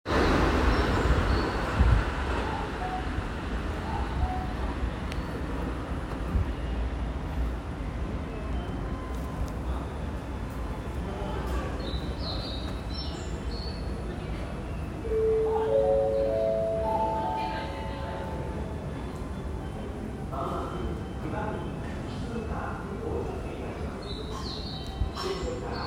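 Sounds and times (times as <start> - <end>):
Keikyu Main Line train approaching Tachiaigawa station: 0.1 - 24.7.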